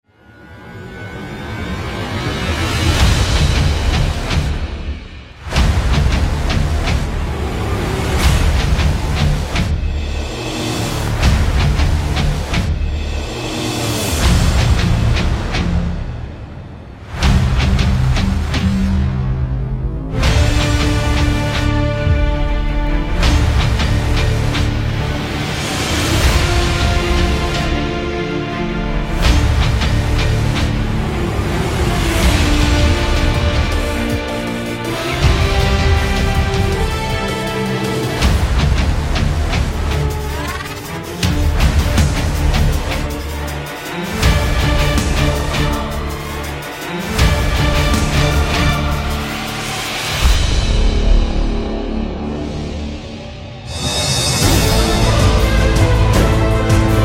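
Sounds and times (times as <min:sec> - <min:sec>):
epically powerful trailer music: 0:00.0 - 0:57.0.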